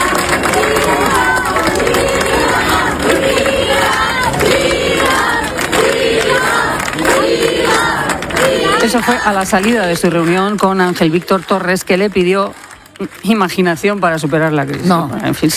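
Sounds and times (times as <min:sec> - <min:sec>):
rhythmic shouts: 0:00.0 - 0:12.1
large crowd clapping and cheering: 0:00.0 - 0:15.5
speech: 0:08.9 - 0:15.5.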